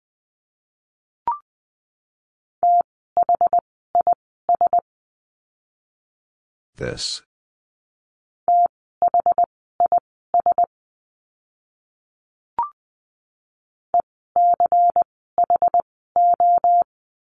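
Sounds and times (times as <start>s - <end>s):
Morse code beeps at 20 words per minute: 2.6s - 4.8s, 8.5s - 10.7s, 14.4s - 16.9s
speech: 6.8s - 7.3s.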